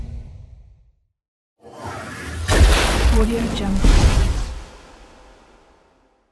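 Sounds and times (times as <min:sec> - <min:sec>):
magical spell sounds: 0:01.7 - 0:05.8.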